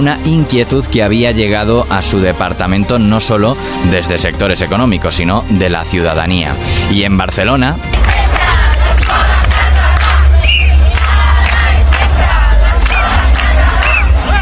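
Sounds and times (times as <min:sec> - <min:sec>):
speech: 0:00.0 - 0:08.4
large outdoor protest crowd in Barcelona chanting a slogan: 0:07.9 - 0:14.4.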